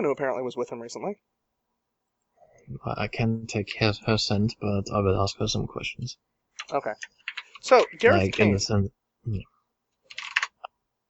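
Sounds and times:
speech: 0:00.0 - 0:01.4, 0:02.7 - 0:09.5
keyboard typing: 0:06.6 - 0:08.6, 0:10.0 - 0:10.7.

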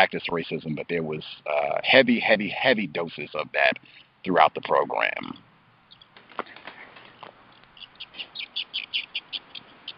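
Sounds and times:
speech: 0:00.0 - 0:05.5
birds chirping: 0:03.0 - 0:09.9.

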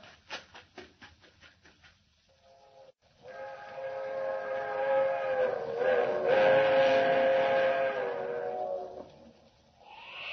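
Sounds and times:
fast-travelling train whistle blast for the highway: 0:03.3 - 0:09.0.

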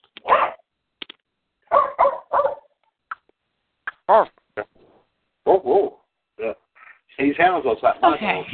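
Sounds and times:
dog barking: 0:00.2 - 0:00.6, 0:01.7 - 0:02.8
speech: 0:04.1 - 0:04.4, 0:07.4 - 0:08.5.

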